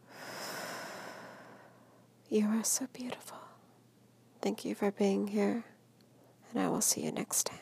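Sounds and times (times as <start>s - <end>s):
slow deep exhale: 0.0s - 2.0s
speech: 2.3s - 3.6s, 4.4s - 5.7s, 6.5s - 7.6s.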